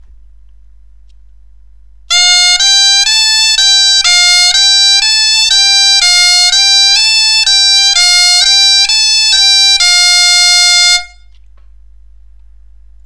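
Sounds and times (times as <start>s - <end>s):
bombarde playing an F G A natural scale: 2.1s - 11.3s.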